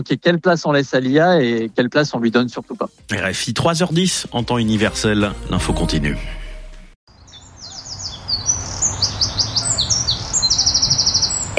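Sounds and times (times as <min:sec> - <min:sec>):
speech: 0:00.0 - 0:06.4
birds chirping and singing: 0:07.1 - 0:11.5.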